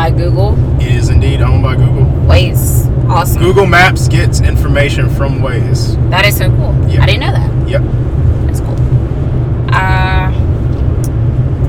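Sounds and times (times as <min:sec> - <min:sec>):
car interior road and engine noise: 0:00.0 - 0:11.6
speech: 0:03.1 - 0:08.2.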